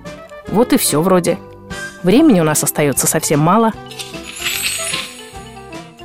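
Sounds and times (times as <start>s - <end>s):
speech: 0.5s - 4.1s
magic book closing sound effect with shimmering tinkling sparkle: 3.8s - 6.0s
soft sustained tone: 3.9s - 5.7s.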